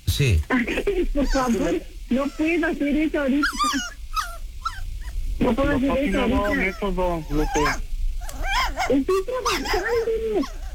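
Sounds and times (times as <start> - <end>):
speech: 0.2 - 4.0, 5.4 - 7.9, 8.9 - 10.6
small pet dog whimpering and yipping: 1.2 - 2.6, 3.4 - 5.2, 6.2 - 10.7
small dog barking: 3.4 - 5.2, 6.2 - 10.7.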